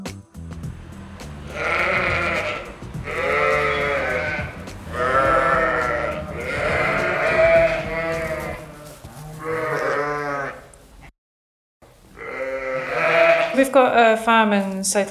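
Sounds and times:
dairy sheep and goats bleating on a cheese-making farm: 1.4 - 10.8, 12.1 - 13.9
scuffling and clattering: 3.4 - 10.0
speech: 13.8 - 15.1.

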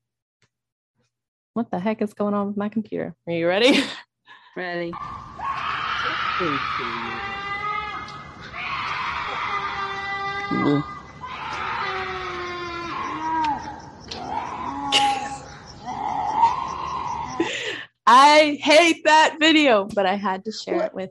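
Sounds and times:
speech: 1.6 - 5.3, 6.4 - 7.5, 10.5 - 10.9, 18.1 - 21.0
mountain lion screaming: 5.0 - 17.4.

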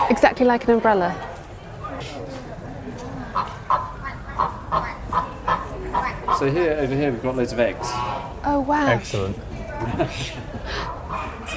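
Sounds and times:
speech: 0.1 - 1.3, 6.4 - 10.9
Indian runner duck honking quacks: 3.3 - 6.8, 7.7 - 8.4
laughter: 9.6 - 11.4.

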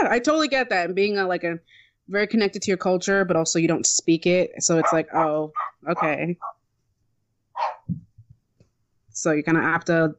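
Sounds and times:
speech: 0.0 - 6.6, 9.2 - 10.1
dog huffing and grunting: 4.8 - 5.0
dog barking: 4.8 - 6.6, 7.6 - 7.9.

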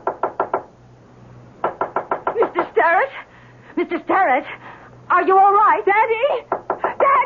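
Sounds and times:
knocking on a locked door: 0.0 - 0.7, 1.6 - 2.7, 6.5 - 7.1
speech: 3.8 - 6.6.

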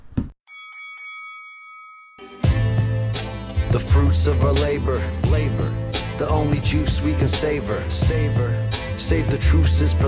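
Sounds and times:
bell dinging with a sustained ringing tone: 0.5 - 9.0
loud burst of music: 2.2 - 10.0
speech: 3.7 - 10.0.

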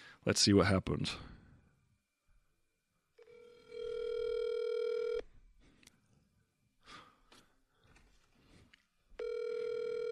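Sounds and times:
speech: 0.2 - 1.4
ringback tone from an outgoing telephone call: 3.2 - 5.2, 9.2 - 10.1.

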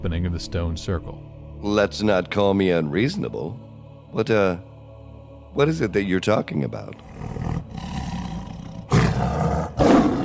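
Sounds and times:
speech: 0.3 - 4.7, 5.5 - 7.4
giant white tiger roaring and snarling: 7.0 - 10.2.

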